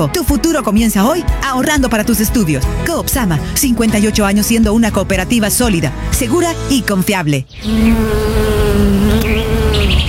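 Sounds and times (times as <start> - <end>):
speech: 0.0 - 9.0
bees buzzing at a beekeeping school in a nature reserve: 5.3 - 10.0.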